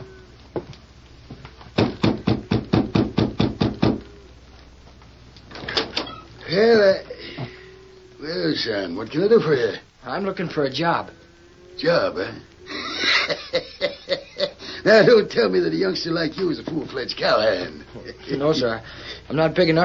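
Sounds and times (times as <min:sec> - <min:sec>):
knocking on a wooden door: 0:01.8 - 0:04.0
speech: 0:08.6 - 0:11.2, 0:11.8 - 0:12.5, 0:14.8 - 0:19.8
laughter: 0:12.7 - 0:15.3.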